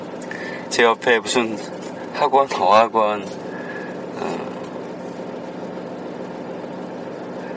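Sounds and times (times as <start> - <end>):
car engine humming from inside the vehicle while driving: 0.0 - 7.5
speech: 0.7 - 3.4.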